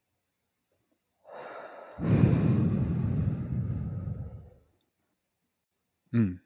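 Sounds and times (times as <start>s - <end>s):
slow deep breath in a guided breathing exercise: 1.3s - 4.6s.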